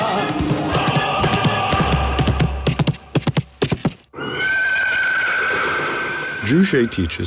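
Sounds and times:
galloping hoofbeats of ridden horse: 0.7 - 4.0
white horse whinnying: 4.1 - 6.6
speech: 6.5 - 7.2.

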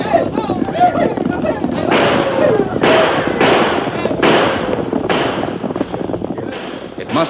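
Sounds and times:
wild shouting voices: 0.0 - 4.2
galloping hoofbeats: 0.0 - 7.2
volley of sharp gunshots: 1.8 - 5.8.

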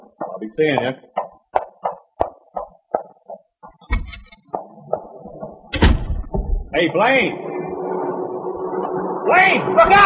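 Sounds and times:
quick evenly spaced steps or knocks: 0.2 - 6.7
speech: 0.4 - 1.1, 6.8 - 7.5, 9.3 - 10.0
door opening with a creak and closing with a solid shut: 3.8 - 4.5, 5.7 - 6.7.

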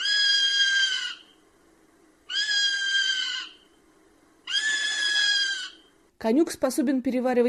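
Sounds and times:
common buzzard circling and giving mewing cries: 0.0 - 1.4, 2.3 - 3.7, 4.5 - 5.9
speech: 6.2 - 7.4.

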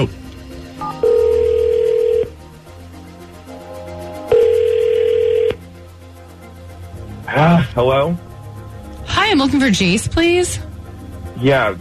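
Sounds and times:
outgoing phone call ringback tones: 0.8 - 2.4, 4.3 - 5.6
speech: 7.8 - 8.3, 9.3 - 10.7, 11.4 - 11.7.

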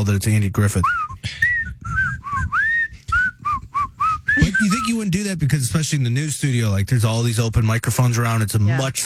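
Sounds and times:
speech: 0.0 - 1.5, 4.6 - 9.0
man whistling a short breathy tune: 0.8 - 5.0.

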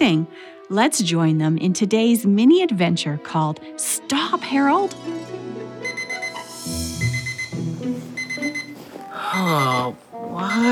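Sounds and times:
speech: 0.0 - 5.4, 9.4 - 10.6
alarm clock ringing with a melodic electronic tune: 5.8 - 7.6, 8.2 - 8.8, 9.4 - 9.9, 10.5 - 10.6.

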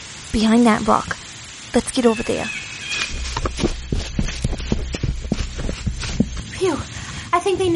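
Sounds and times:
speech: 0.4 - 2.6, 6.6 - 7.7
running footsteps of a group of people in a jungle: 2.9 - 6.6
low rumble: 3.0 - 6.6.

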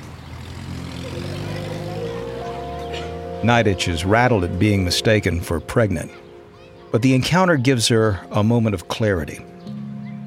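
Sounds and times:
car engine rumbling on a street: 0.0 - 6.6
speech: 3.4 - 6.2, 6.9 - 9.5.

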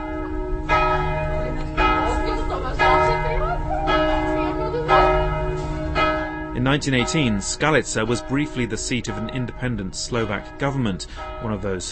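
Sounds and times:
church bells ringing across an open town square: 0.0 - 11.9
faint voices murmuring: 1.0 - 5.9
speech: 6.8 - 11.9.

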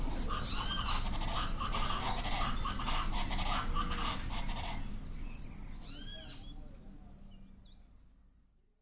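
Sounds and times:
chachalacas calling at dusk: 0.0 - 4.9
steady insect-like drone: 0.0 - 7.0.

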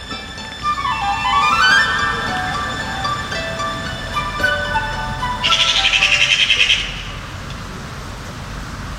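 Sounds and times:
sliding tonal whistle-like call: 0.0 - 7.1
magpies giving harsh rattling chatter: 5.2 - 7.1.

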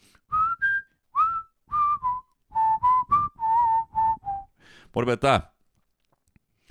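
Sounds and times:
person whistling a song melody: 0.3 - 4.6
speech: 5.0 - 5.5.

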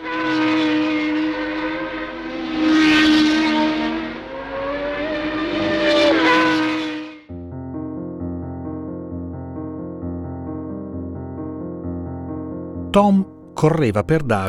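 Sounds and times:
Shadow Ford Formula One race car engine roaring past: 0.0 - 7.3
speech: 13.0 - 14.4.

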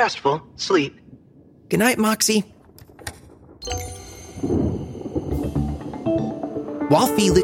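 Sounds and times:
speech: 0.0 - 1.0, 1.7 - 2.5, 6.9 - 7.4
steady rushing wind: 0.2 - 6.7
deep rumble of springtime thunder: 0.5 - 6.9
faint ringing chime-like tones: 3.6 - 6.0.

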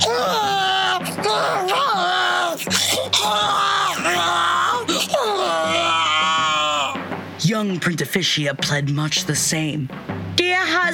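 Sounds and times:
voice imitating a baby's shrill wailing screech: 0.0 - 7.0
speech: 7.8 - 10.9.

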